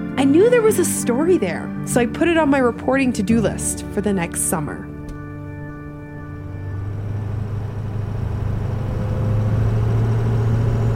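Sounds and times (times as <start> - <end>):
truck engine rumbling while driving into Atlantic City: 0.0 - 10.9
speech: 0.2 - 4.9
road noise: 5.6 - 10.9.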